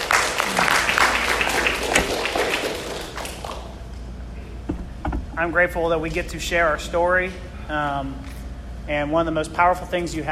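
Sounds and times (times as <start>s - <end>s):
audience applause: 0.0s - 3.8s
speech: 5.4s - 10.3s.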